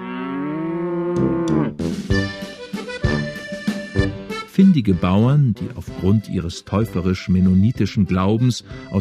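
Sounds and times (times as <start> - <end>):
cow mooing: 0.0 - 1.9
speech: 1.2 - 2.2, 4.6 - 8.9.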